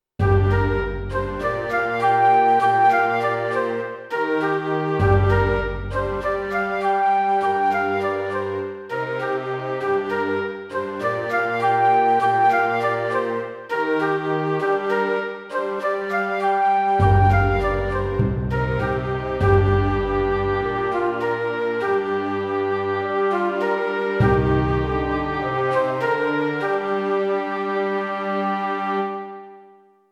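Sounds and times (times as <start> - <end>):
symphony orchestra playing pentatonic music in G minor: 0.2 - 29.6.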